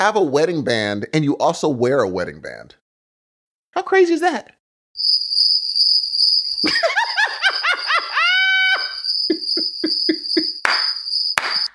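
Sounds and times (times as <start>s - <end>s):
speech: 0.0s - 2.8s, 3.7s - 5.6s
high-pitched cricket chirping: 5.0s - 11.7s
rhythmic laughter-like vocal whoops: 6.6s - 10.6s.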